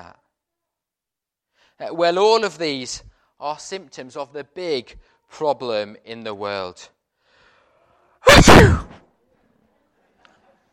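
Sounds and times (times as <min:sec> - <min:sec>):
speech: 0:01.8 - 0:07.0, 0:08.2 - 0:09.0
loud sneeze: 0:08.2 - 0:09.1.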